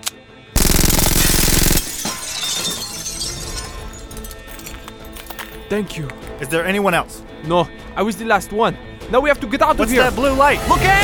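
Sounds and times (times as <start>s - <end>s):
large glass airlock window shattering: 1.0s - 5.3s
glass shards tinkling and clattering: 1.7s - 5.6s
speech: 5.7s - 11.0s.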